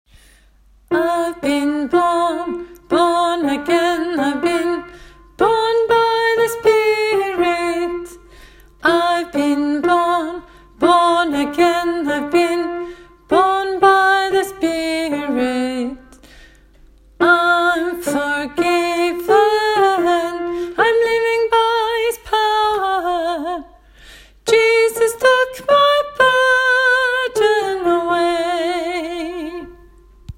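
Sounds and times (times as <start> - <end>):
soprano singing: 0.9 - 16.2, 17.2 - 23.8, 24.4 - 30.3.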